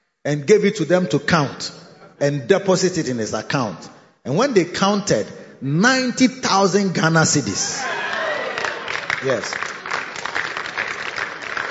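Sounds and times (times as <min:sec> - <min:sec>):
speech: 0:00.2 - 0:08.0, 0:09.2 - 0:09.8
audience clapping: 0:07.8 - 0:11.6.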